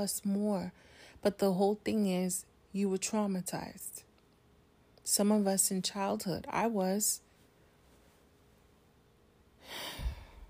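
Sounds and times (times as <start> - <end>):
speech: 0.0 - 4.0, 5.1 - 7.3
deep breath: 9.6 - 10.4.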